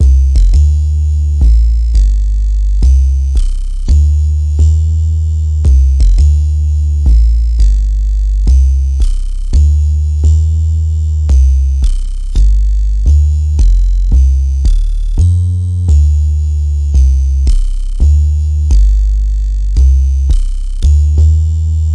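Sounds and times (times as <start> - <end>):
double deep synth bass: 0.0 - 21.9.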